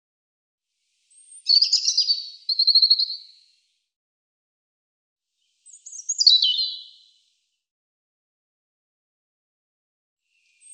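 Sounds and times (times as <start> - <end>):
European robin song with whistle, warble and trill: 0.9 - 3.6, 5.4 - 7.3.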